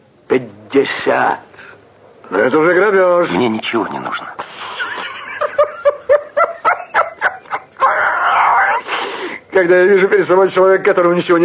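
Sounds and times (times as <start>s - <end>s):
speech: 0.4s - 4.8s, 9.6s - 11.4s
laughter: 4.4s - 8.8s
capuchin monkey sustained harsh scream and squeal: 7.8s - 8.9s.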